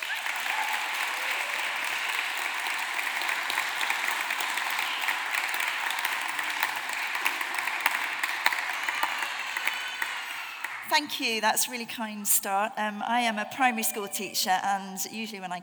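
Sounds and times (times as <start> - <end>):
sizeable audience applauding a speaker: 0.0 - 11.4
speech: 11.0 - 15.6.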